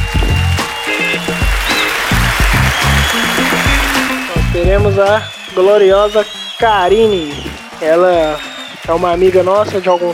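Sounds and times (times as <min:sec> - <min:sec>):
crowd clapping: 0:00.0 - 0:10.1
short melodic pattern of electronic tones: 0:03.2 - 0:05.0
speech: 0:04.8 - 0:10.1.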